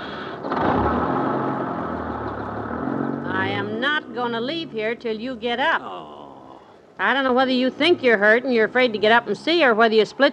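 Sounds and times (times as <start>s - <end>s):
bus engine idling and pulling away: 0.0s - 6.6s
speech: 4.2s - 6.2s, 7.0s - 10.3s.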